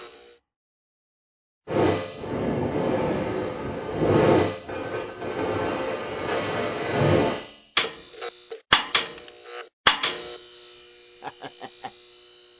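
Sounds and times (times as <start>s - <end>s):
metal clanking: 1.8s - 8.0s
person laughing: 11.2s - 12.0s.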